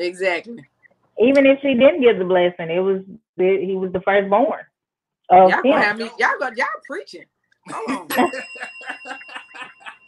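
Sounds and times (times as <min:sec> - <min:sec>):
speech: 0:00.0 - 0:04.7, 0:05.3 - 0:09.2
laughter: 0:07.7 - 0:10.0
small bell ringing rapidly: 0:08.1 - 0:10.0.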